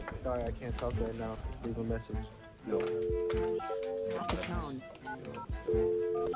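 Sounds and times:
speech: 0.2 - 6.3
electronic DTMF cell phone keypad tones: 2.7 - 6.3.

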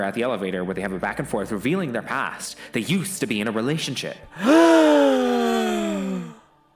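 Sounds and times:
speech: 0.0 - 5.3
dramatic gasp: 4.3 - 6.5.

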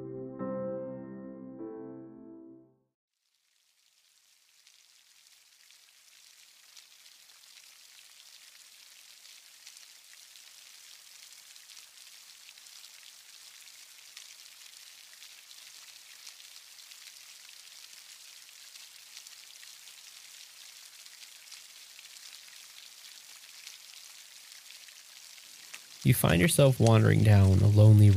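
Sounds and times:
soft music: 0.0 - 2.9, 26.1 - 28.1
steady rain falling: 3.5 - 28.1
speech: 26.0 - 28.1.

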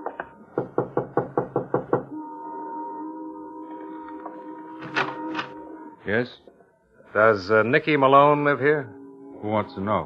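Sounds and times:
firm knocking on the door of a white single-frame house: 0.1 - 2.1
speech: 6.1 - 6.5, 7.1 - 10.0.

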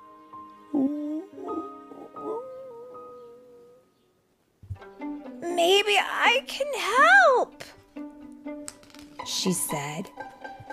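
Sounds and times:
low mournful howl: 0.7 - 3.8
speech: 5.6 - 7.8, 9.3 - 10.2.

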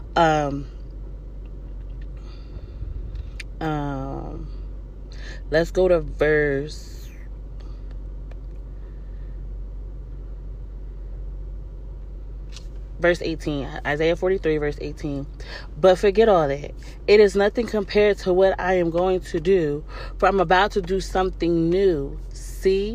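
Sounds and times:
car air conditioning fan blowing, turned up because the car is hot: 0.0 - 22.9
speech: 0.2 - 0.8, 3.6 - 4.6, 5.4 - 7.0, 13.0 - 22.9.

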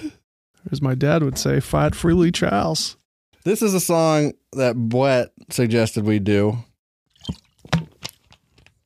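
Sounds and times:
speech: 0.7 - 7.4
sipping and swallowing a drink: 7.1 - 8.7.

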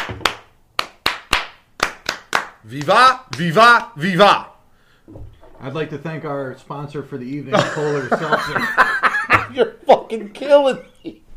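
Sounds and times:
hand claps: 0.0 - 3.9
speech: 2.6 - 4.5, 5.1 - 11.3
laughter: 7.5 - 9.7.

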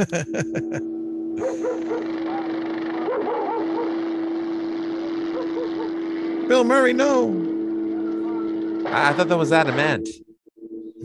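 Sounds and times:
laughter: 0.0 - 0.8
speech: 0.0 - 3.4, 6.5 - 7.5, 8.9 - 10.2
dogs barking: 1.4 - 4.0, 5.3 - 6.0
dogs yelping and whining: 1.4 - 4.0
droning engine-like hum: 1.6 - 9.8.

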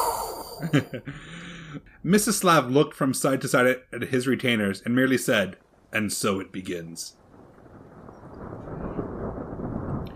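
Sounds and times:
laughter: 0.6 - 1.2
speech: 0.6 - 7.2
deep rolling rumble of thunder: 5.3 - 10.1.

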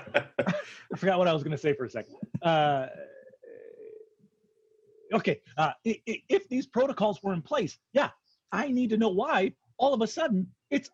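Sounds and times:
speech: 0.1 - 3.0, 5.1 - 10.9
long drawn-out belch with gurgling tail: 2.9 - 4.1.

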